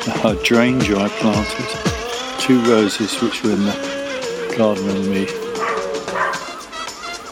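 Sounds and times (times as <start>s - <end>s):
speech: 0.2s - 1.9s, 2.5s - 4.0s, 4.6s - 5.4s
neighbour's dog barking and yelping in a garden: 5.5s - 6.7s.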